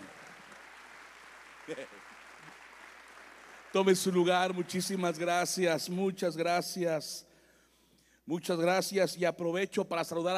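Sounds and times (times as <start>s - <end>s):
crowd applause: 0.0s - 5.4s
speech: 1.7s - 2.2s, 3.7s - 7.3s, 8.3s - 10.3s.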